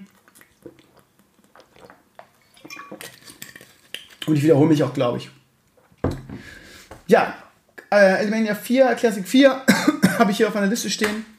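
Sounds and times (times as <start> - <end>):
person sipping and swallowing water from a glass: 0.0 - 4.3
glass clinking: 2.6 - 3.4
speech: 4.3 - 5.4, 7.1 - 11.3.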